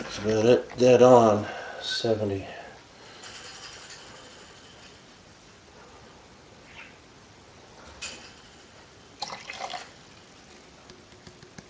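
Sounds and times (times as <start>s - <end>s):
speech: 0.2s - 2.6s
water poured into a measuring container: 9.2s - 10.0s.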